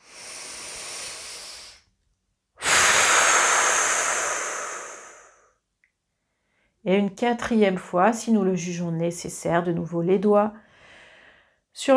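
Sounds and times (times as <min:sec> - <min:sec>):
slow guided breathing during a relaxation exercise: 0:00.0 - 0:01.9, 0:02.6 - 0:05.6, 0:10.6 - 0:11.6
speech: 0:06.8 - 0:10.6, 0:11.8 - 0:11.9.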